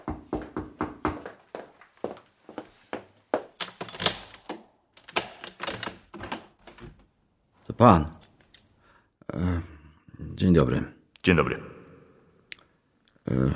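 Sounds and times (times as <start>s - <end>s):
door lock and handle being worked as a door is opened: 3.5s - 7.2s
speech: 7.8s - 8.1s, 10.4s - 11.7s, 13.3s - 13.5s.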